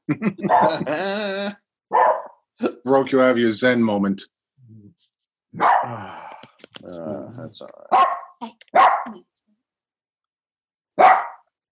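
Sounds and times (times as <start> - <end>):
laughter: 0.0 - 1.5
speech: 0.1 - 2.2, 2.8 - 4.3, 5.5 - 6.2, 6.8 - 9.3
dog barking: 0.5 - 0.8, 1.9 - 2.4, 5.6 - 6.0, 7.9 - 9.1, 11.0 - 11.5.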